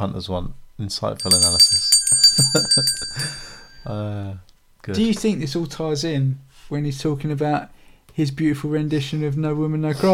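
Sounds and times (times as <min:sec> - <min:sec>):
speech: 0:00.0 - 0:10.1
bell ringing with a bright sustained metallic tone: 0:01.2 - 0:04.0.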